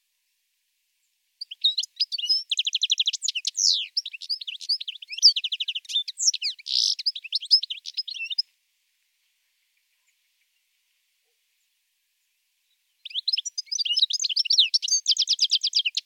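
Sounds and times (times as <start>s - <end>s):
European goldfinch twittering and trilling: 1.4s - 8.4s, 13.0s - 16.0s.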